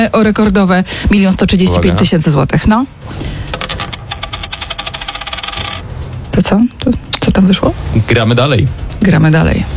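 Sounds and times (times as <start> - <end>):
speech: 0.0 - 3.4, 6.4 - 9.7
coin tossed during a cash-prize game, spinning and settling: 3.5 - 6.0.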